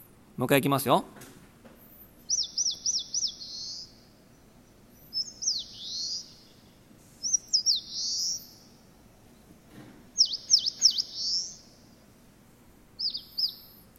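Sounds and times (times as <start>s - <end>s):
faint low hum: 0.0s - 13.9s
speech: 0.4s - 1.3s
Eastern crowned warbler singing: 2.1s - 9.3s, 10.1s - 12.2s, 13.0s - 13.9s.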